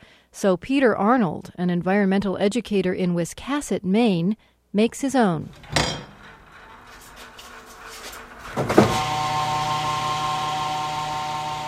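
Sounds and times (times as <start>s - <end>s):
speech: 0.4s - 6.0s
sharp metallic clank: 5.6s - 6.4s
pickup truck hydraulic hoist electric-hydraulic motor whine and hum lifting oil drums: 5.6s - 11.6s.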